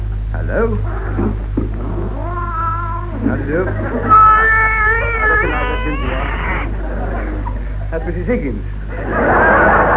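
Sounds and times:
steady low hum: 0.0s - 9.9s
speech: 0.5s - 1.5s, 3.2s - 4.4s, 7.9s - 9.9s
tabby cat hissing at a man's boot: 0.8s - 6.8s
tabby cat with half a tail meowing in a shop selling animals: 1.9s - 3.2s, 3.9s - 6.8s
laughter: 3.2s - 9.9s.

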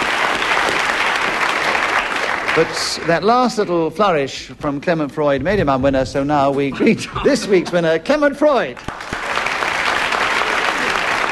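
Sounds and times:
studio audience applause: 0.0s - 3.7s, 8.8s - 11.2s
speech: 2.6s - 9.1s.

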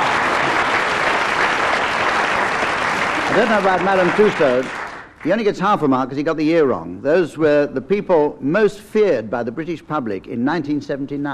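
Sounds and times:
audience applause: 0.0s - 5.4s
speech: 3.4s - 11.3s.

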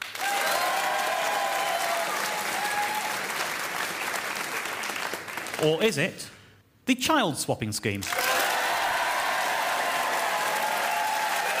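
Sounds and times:
crowd clapping: 0.0s - 5.9s, 8.1s - 11.5s
cheers and whoops: 0.1s - 3.3s, 8.2s - 11.5s
speech: 5.6s - 8.2s.

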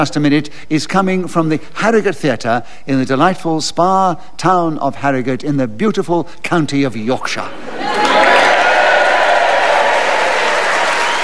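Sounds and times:
speech: 0.0s - 8.4s
large indoor theatre audience applauding: 7.8s - 11.2s.

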